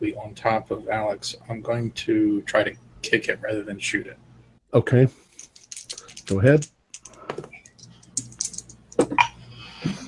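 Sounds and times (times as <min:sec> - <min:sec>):
speech: 0:00.0 - 0:05.2, 0:06.3 - 0:06.8
typing on a computer keyboard: 0:05.5 - 0:08.9.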